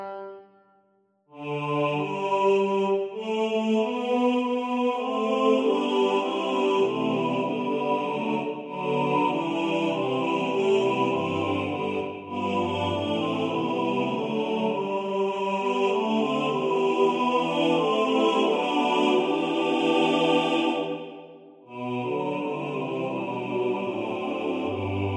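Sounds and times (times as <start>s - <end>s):
male choir singing with all voices equally weighted: 1.4s - 25.1s.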